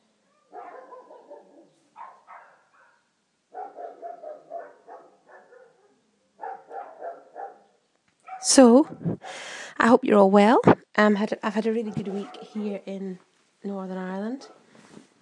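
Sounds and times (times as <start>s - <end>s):
big German Shepherd barking deeply: 0.3s - 8.4s, 11.8s - 12.6s
speech: 8.4s - 14.6s.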